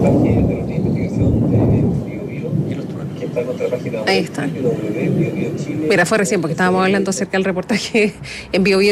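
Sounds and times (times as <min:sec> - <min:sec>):
deep thunder rumbling during an electrical storm: 0:00.0 - 0:07.2
steady rain: 0:00.0 - 0:07.4
faint birds chirping: 0:00.4 - 0:05.9
speech: 0:04.0 - 0:08.9.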